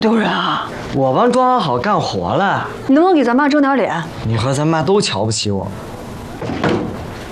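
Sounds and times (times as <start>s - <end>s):
speech: 0.0s - 6.8s
steady hiss of noise: 0.0s - 7.3s
door being closed during a heated argument at home: 6.4s - 7.3s.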